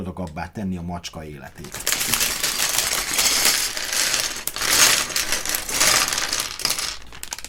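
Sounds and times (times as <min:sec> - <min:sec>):
speech: 0:00.1 - 0:02.4
Lego pieces rattling in a plastic bag: 0:01.5 - 0:07.4.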